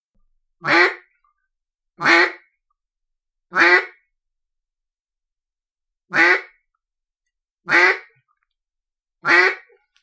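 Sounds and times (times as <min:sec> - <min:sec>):
lonesome mallard hen quacking: 0:00.6 - 0:01.1, 0:02.0 - 0:02.5, 0:03.5 - 0:04.0, 0:06.1 - 0:06.6, 0:07.7 - 0:08.2, 0:09.2 - 0:09.8.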